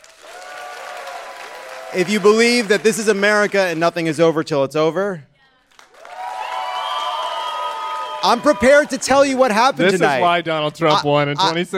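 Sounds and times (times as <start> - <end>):
audience applause at a debate: 0.0 - 4.2, 5.7 - 10.2
speech: 1.9 - 5.3, 8.2 - 11.7.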